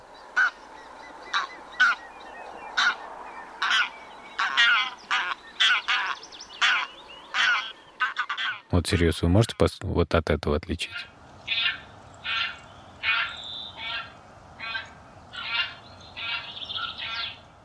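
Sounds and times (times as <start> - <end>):
greylag goose honking calls: 1.3 - 2.0, 3.6 - 8.7, 10.8 - 17.4
speech: 8.8 - 11.2.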